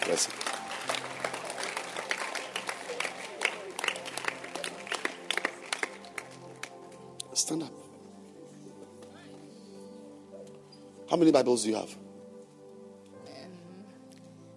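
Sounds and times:
room full of people clapping: 0.0s - 7.1s
speech: 0.2s - 0.5s, 7.4s - 7.8s, 11.1s - 12.0s.

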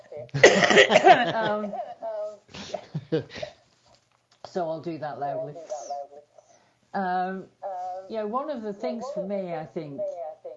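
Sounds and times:
speech: 0.3s - 1.9s, 3.1s - 3.5s, 4.5s - 5.9s, 6.9s - 10.2s
person coughing: 0.4s - 1.6s
laughter: 0.4s - 1.7s, 2.8s - 3.5s.

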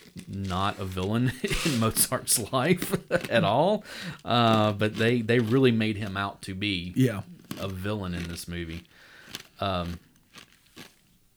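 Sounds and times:
ice crunching while being chewed: 0.0s - 11.3s
speech: 0.4s - 10.1s
person humming: 7.0s - 7.2s.

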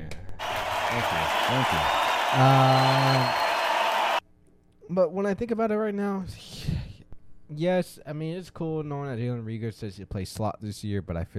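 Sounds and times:
people cheering and whooping: 0.4s - 4.2s
steady dense applause: 0.4s - 4.2s
speech: 0.9s - 3.5s, 4.9s - 6.7s, 7.5s - 11.3s.

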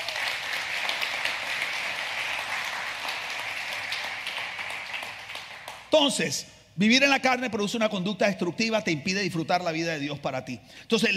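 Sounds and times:
audience applause: 0.0s - 5.9s
speech: 5.9s - 11.1s.

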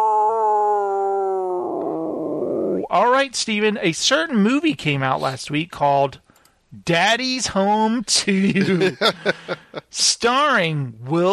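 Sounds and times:
werewolf-style howl breaking into a raspy growl: 0.0s - 2.9s
speech: 2.9s - 6.2s, 6.8s - 11.3s
laughter: 8.3s - 9.9s.

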